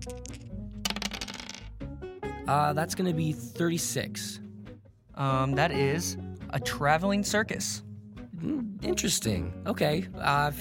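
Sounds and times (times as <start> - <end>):
dice rolling and clattering: 0.0 - 1.7
speech: 2.5 - 4.4, 5.2 - 10.5.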